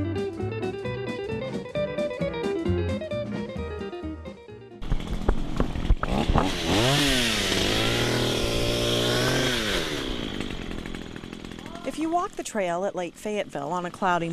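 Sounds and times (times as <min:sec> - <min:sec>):
brief musical lead-in: 0:00.0 - 0:04.8
chainsaw engine revving while cutting through trees: 0:04.8 - 0:12.4
speech: 0:06.4 - 0:07.3, 0:12.0 - 0:14.3.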